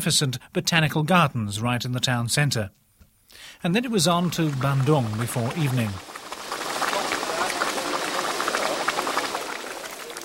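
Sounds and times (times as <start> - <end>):
speech: 0.0 - 6.2
volcanic hot spring bubbling and gurgling in the mountains around Bandung: 3.9 - 10.2.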